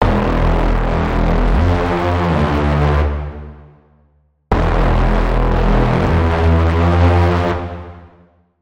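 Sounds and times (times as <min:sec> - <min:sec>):
braam: 0:00.0 - 0:08.2.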